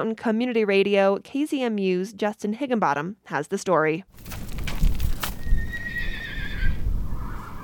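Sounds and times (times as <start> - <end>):
speech: 0.0 - 4.4
hooves thudding and scuffing on dirt: 4.1 - 5.9
horse whinnying at a corral: 5.3 - 7.6.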